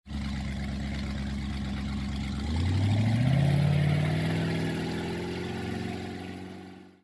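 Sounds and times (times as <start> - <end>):
boat leaving: 0.1 - 6.8.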